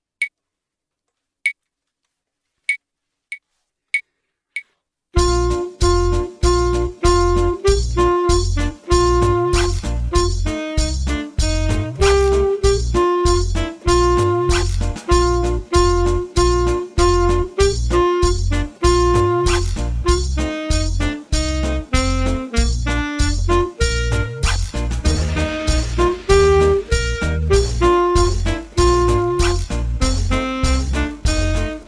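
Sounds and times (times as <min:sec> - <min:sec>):
saxophone playing: 0:05.2 - 0:31.8.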